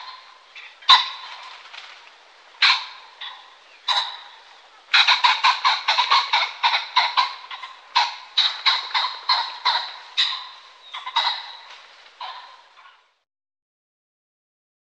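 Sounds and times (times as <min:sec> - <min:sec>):
Common pheasant calling with harsh notes: 0:00.0 - 0:01.8, 0:02.5 - 0:13.2.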